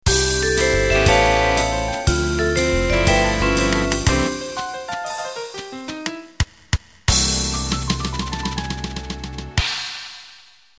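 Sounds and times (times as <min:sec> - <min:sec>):
cool jazz ending: 0:00.1 - 0:06.1, 0:07.1 - 0:09.6.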